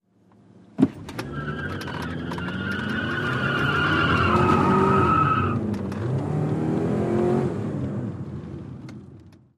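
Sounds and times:
midsize sedan peeling out: 0:01.0 - 0:07.9.

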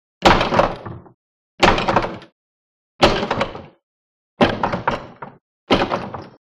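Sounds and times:
door being rammed with crash slams: 0:00.2 - 0:02.4, 0:03.0 - 0:03.8, 0:04.4 - 0:06.4.

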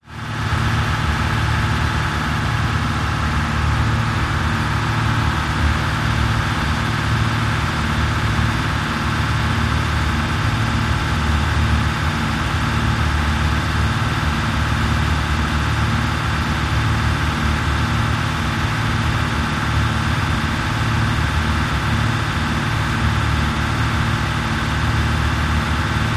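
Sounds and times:
marine engine idling: 0:00.1 - 0:26.1.

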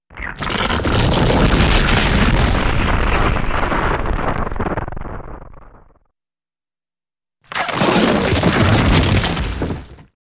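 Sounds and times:
rock breaking explosively: 0:00.4 - 0:06.0, 0:07.5 - 0:10.1.

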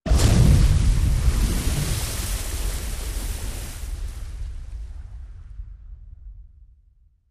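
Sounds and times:
explosion: 0:00.0 - 0:06.8
water splash: 0:00.1 - 0:04.9.

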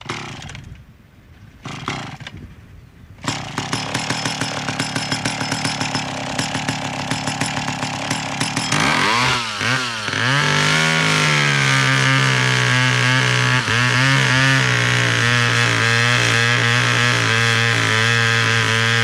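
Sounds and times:
chainsaw false start: 0:00.0 - 0:00.8, 0:01.6 - 0:02.4, 0:03.2 - 0:19.0.

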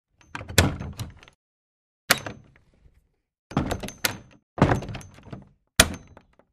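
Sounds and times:
wooden door opening and closing: 0:00.1 - 0:01.4, 0:03.5 - 0:06.5.

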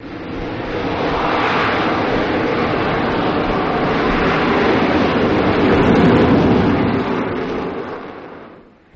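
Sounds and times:
AV-8B Harrier jet hovering and moving: 0:00.0 - 0:08.9.

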